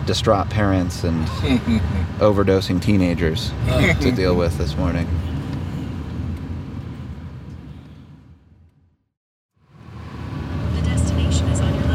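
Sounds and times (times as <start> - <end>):
car engine and road rumble pulling into a parking lot: 0.0 - 11.9
speech: 0.1 - 5.3.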